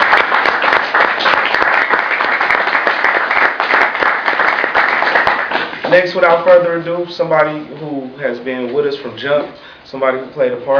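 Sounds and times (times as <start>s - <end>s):
audience applause: 0.0s - 5.9s
speech: 5.9s - 10.7s.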